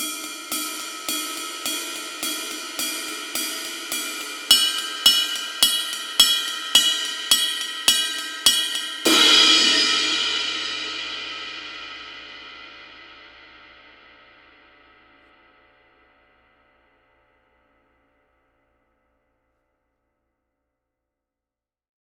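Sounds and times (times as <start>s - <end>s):
ride cymbal: 0.0s - 12.0s.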